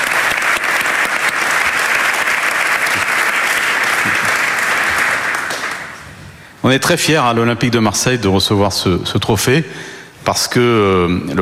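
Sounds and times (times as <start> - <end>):
large audience applauding: 0.0 - 6.0
speech: 6.7 - 11.4.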